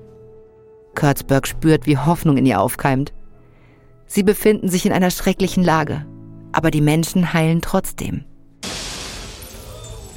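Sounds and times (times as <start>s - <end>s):
speech: 1.0s - 3.2s, 4.1s - 8.3s
breaking and tinkling glass debris: 8.6s - 10.1s
loud crash of glass shattering: 8.6s - 10.1s.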